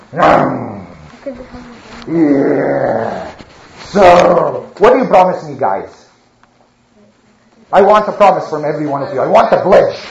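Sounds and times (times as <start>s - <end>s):
speech: 0.1s - 0.6s, 1.2s - 6.0s, 7.7s - 10.0s
lion roaring: 0.1s - 1.0s, 2.1s - 3.3s.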